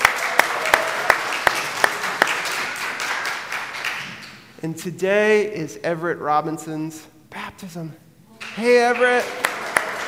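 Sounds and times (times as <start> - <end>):
roomful of people applauding: 0.0 - 4.3, 8.4 - 10.0
sharp evenly spaced claps: 0.0 - 4.4, 8.4 - 10.0
speech: 4.6 - 8.0, 8.6 - 9.4.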